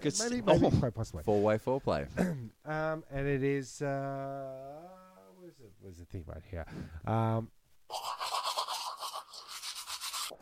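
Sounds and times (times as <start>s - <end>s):
speech: 0.0s - 8.3s
toothbrush scrubbing briskly: 7.9s - 10.4s.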